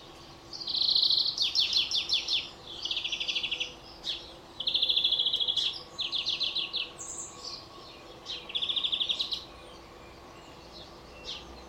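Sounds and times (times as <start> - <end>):
European greenfinch Chloris chloris metallic trills and twitters: 0.0 - 11.6
steady background hiss: 0.0 - 11.6.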